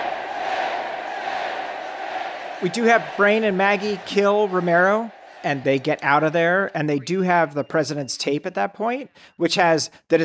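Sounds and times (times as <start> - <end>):
large crowd chanting in unison: 0.0 - 6.7
speech: 2.6 - 10.2.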